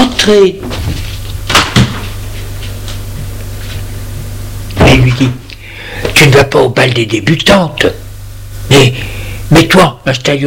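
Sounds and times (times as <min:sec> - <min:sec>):
low steady hum: 0:00.0 - 0:10.4
speech: 0:00.2 - 0:01.0, 0:05.0 - 0:05.4, 0:06.2 - 0:08.0, 0:08.7 - 0:10.4
door shutting with a short thud: 0:04.8 - 0:05.4.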